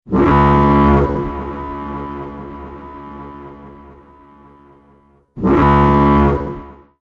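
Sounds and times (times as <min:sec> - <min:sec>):
extra loud alarm: 0:00.1 - 0:07.0.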